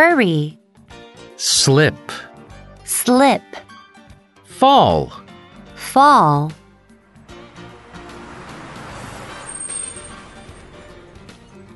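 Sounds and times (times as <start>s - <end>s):
speech: 0.0s - 0.6s, 1.4s - 2.3s, 2.9s - 3.6s, 4.6s - 5.2s, 5.8s - 6.6s
bus engine rumbling along a road: 7.6s - 11.4s.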